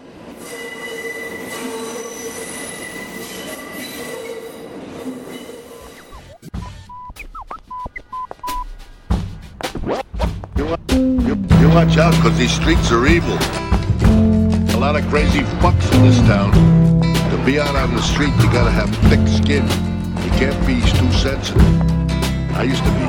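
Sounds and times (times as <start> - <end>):
train passing on elevated railway in Manhattan: 0.0 - 6.3, 11.4 - 23.0
high metallic train wheel squeal: 0.4 - 6.4
sparse electronic beeps: 5.9 - 8.7
speech: 11.8 - 13.6, 14.9 - 21.9, 22.6 - 23.0.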